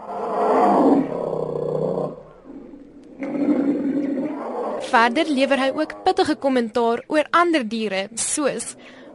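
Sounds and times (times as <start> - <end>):
lion roaring in deep rumbling bursts: 0.0 - 6.4
speech: 4.9 - 9.0.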